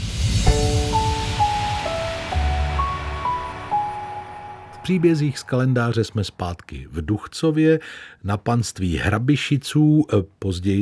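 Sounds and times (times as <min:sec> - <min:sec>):
time machine rushing whoosh with low rumble: 0:00.0 - 0:00.5
clear electronic tones stepping up and down in pitch: 0:00.4 - 0:06.0
speech: 0:04.9 - 0:10.8.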